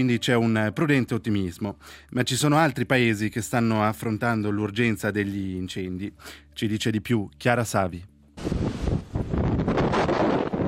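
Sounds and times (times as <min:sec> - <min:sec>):
speech: 0:00.0 - 0:08.8
strong gusting wind across the microphone on Crete: 0:08.4 - 0:10.6.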